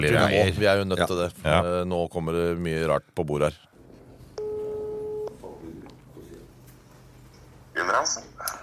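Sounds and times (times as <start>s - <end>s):
speech: 0.0s - 3.7s, 7.8s - 8.3s
low noise: 0.0s - 8.6s
electronic telephone tone as a phone call is placed: 4.4s - 5.3s.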